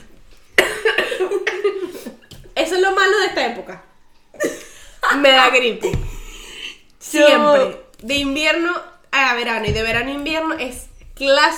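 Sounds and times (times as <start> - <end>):
person coughing raspily: 0.6 - 2.1
speech: 3.4 - 3.9, 5.1 - 6.0, 7.0 - 11.5.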